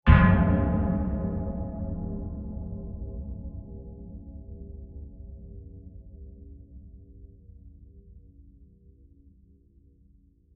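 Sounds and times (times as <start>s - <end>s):
long deep metal impact: 0.1s - 4.3s.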